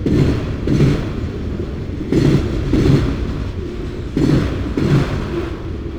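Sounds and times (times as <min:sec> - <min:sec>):
train in Chicago: 0:00.0 - 0:05.9.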